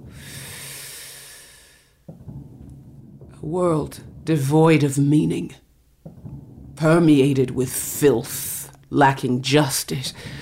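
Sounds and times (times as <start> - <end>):
deep inhalation: 0.0 - 2.1
speech: 3.4 - 5.6, 6.8 - 10.3.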